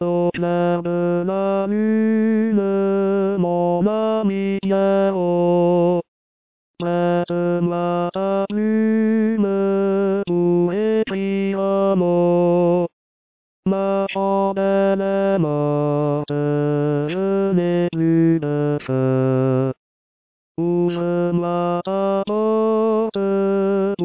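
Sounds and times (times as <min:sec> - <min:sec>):
tenor singing: 0:00.0 - 0:06.0, 0:06.8 - 0:12.9, 0:13.7 - 0:19.8, 0:20.6 - 0:24.0.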